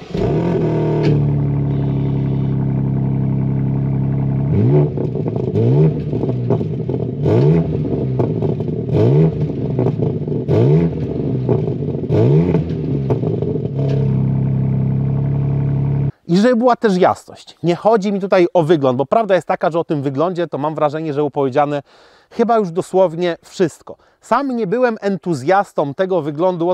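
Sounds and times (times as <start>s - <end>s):
4 Competition Cabrio four-wheel drive convertible sports car engine revving: 0.0s - 16.1s
speech: 16.5s - 26.7s.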